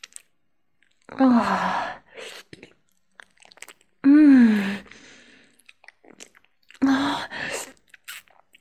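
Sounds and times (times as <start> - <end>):
chewing and eating food: 0.0 - 1.1, 2.4 - 4.0, 5.2 - 6.8, 7.6 - 8.6
speech: 1.1 - 2.4.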